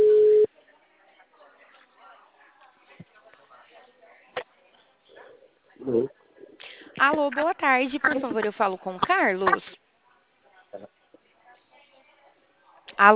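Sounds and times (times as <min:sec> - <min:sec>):
ringback tone on an outgoing phone call: 0:00.0 - 0:00.5
faint talk: 0:00.5 - 0:13.1
speech: 0:05.9 - 0:06.2, 0:07.0 - 0:09.8.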